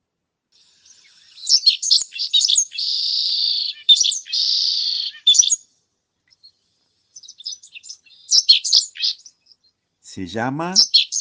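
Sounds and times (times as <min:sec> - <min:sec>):
pipit singing loudly: 0:00.6 - 0:05.6, 0:07.2 - 0:09.3, 0:10.1 - 0:11.2
speech: 0:10.2 - 0:10.9.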